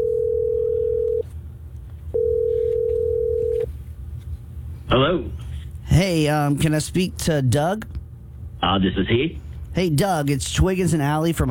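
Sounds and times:
telephone tone while placing a call: 0.0s - 1.2s, 2.1s - 3.7s
speech: 4.9s - 8.0s, 8.6s - 11.4s.

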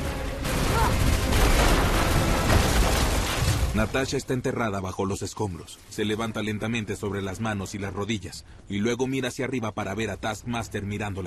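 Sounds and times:
explosion tearing through a base with ceilings collapsing: 0.0s - 4.4s
speech: 3.8s - 11.2s.

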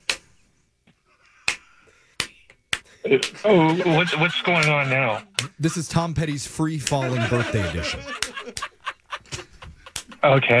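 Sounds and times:
crisp finger snaps: 0.0s - 0.4s, 1.4s - 3.4s, 5.4s - 5.6s, 9.9s - 10.2s
speech: 3.0s - 8.3s, 10.3s - 10.5s
laughter: 3.0s - 10.5s.

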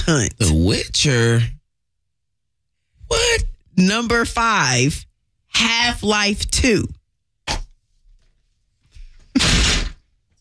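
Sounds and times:
speech: 0.1s - 1.6s, 3.1s - 7.6s
chair being kicked with thump and rattling bang: 9.4s - 10.1s.

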